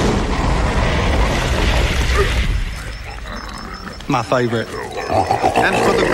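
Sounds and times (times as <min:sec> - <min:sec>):
flamethrower roaring out a sustained blast of flame: 0:00.0 - 0:03.1
speech: 0:04.1 - 0:06.1.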